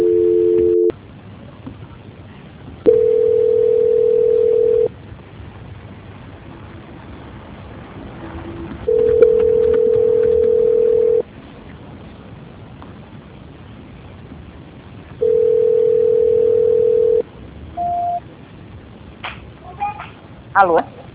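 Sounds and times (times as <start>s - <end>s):
telephone line tone after a failed call transfer: 0.0s - 0.9s, 2.9s - 4.9s, 8.9s - 11.2s, 15.2s - 17.2s, 17.8s - 18.2s
speech: 20.6s - 20.9s.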